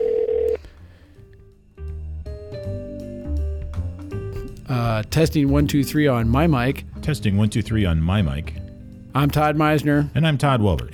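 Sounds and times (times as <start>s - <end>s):
phone line ringing: 0.0s - 0.6s
speech: 4.7s - 8.6s, 9.2s - 10.9s.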